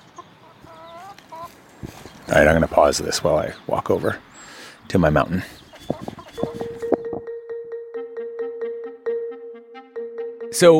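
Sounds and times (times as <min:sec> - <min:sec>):
chickens clucking softly: 0:00.0 - 0:07.2
speech: 0:01.8 - 0:04.3, 0:04.9 - 0:05.6, 0:10.6 - 0:10.7.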